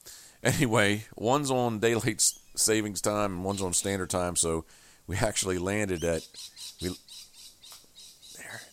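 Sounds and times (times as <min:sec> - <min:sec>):
speech: 0:00.4 - 0:07.2
lorikeets squawking and screeching at Coolangatta on the Gold Coast, Queensland: 0:02.2 - 0:04.5, 0:05.7 - 0:08.7.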